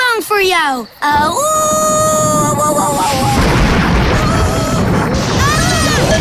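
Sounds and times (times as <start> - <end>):
speech: 0.4 - 2.2
high wailing tones: 1.0 - 6.1
loud thunder crash: 1.2 - 6.1.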